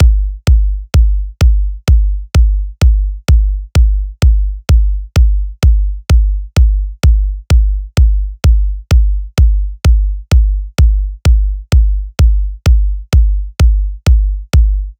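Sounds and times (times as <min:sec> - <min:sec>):
bass drum in C sharp for big room house: 0:00.0 - 0:14.9.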